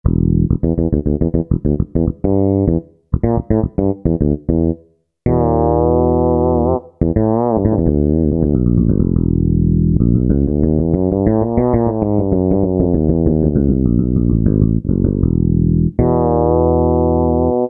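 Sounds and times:
fretless bass synthesizer sound: 0.0s - 17.6s.

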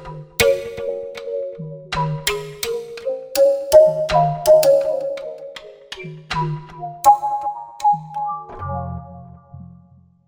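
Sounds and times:
plucked synth tone from a Roland Fantom XR: 0.4s - 1.2s, 2.0s - 5.7s, 7.0s - 9.7s.

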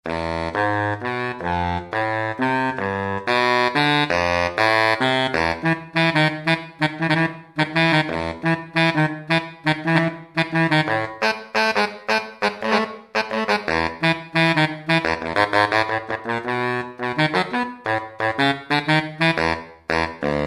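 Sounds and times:
baritone saxophone playing: 0.1s - 20.4s.

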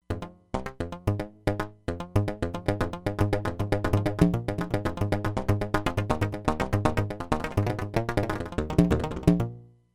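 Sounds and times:
synthesizer factory delay patch: 0.0s - 9.5s.

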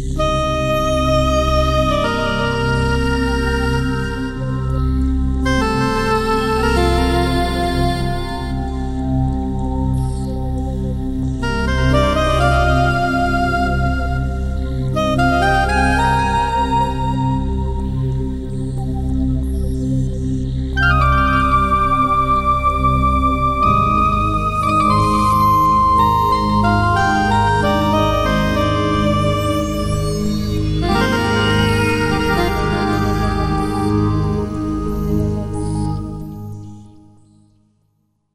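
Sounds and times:
dream sequence music on a Korg TR-Rack synthesizer: 0.1s - 37.2s.

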